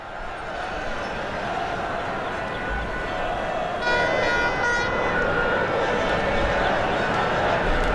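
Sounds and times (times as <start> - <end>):
crowd cheering in the street: 0.0 - 7.9
car horns honking in the street: 3.8 - 5.0.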